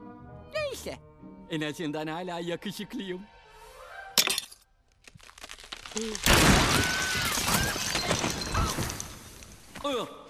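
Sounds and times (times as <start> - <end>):
speech: 0.8 - 3.3, 6.0 - 7.9, 9.8 - 10.2
ice cracking and breaking apart underfoot: 4.9 - 9.8.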